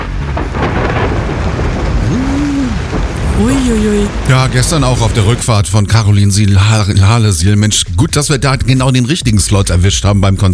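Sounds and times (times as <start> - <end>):
deep thunder rumbling: 0.0 - 10.0
heavy rain: 0.0 - 10.1
speech: 3.4 - 10.5.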